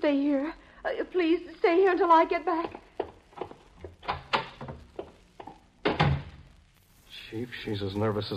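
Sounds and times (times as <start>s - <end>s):
speech: 0.0s - 2.9s, 7.3s - 8.3s
door knocks and clunks: 2.6s - 6.4s
door swinging with heavy rattling thud: 5.8s - 6.4s.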